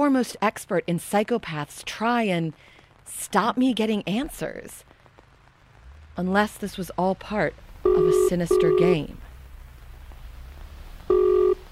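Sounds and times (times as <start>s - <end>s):
speech: 0.0s - 4.9s, 6.2s - 9.2s
short electronic telephone ring tone: 7.9s - 9.0s, 11.1s - 11.7s.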